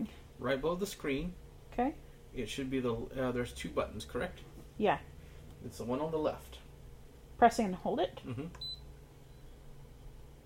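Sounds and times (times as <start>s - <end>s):
speech: 0.0s - 6.6s, 7.4s - 8.7s
low steady hum: 0.0s - 10.4s
Instant Pot smart pressure cooker button beep: 8.6s - 9.5s.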